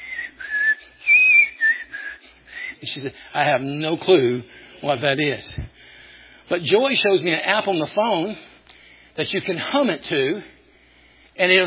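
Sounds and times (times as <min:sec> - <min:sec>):
person whistling a hymn tune: 0:00.0 - 0:03.0
speech: 0:02.8 - 0:05.6, 0:06.5 - 0:08.5, 0:09.2 - 0:10.5, 0:11.4 - 0:11.6.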